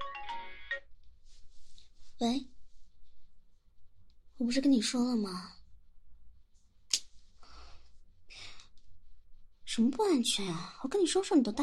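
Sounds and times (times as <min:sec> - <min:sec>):
mobile phone ringtone for an incoming call: 0:00.0 - 0:00.9
speech: 0:02.2 - 0:02.5, 0:04.4 - 0:05.6, 0:09.8 - 0:11.6.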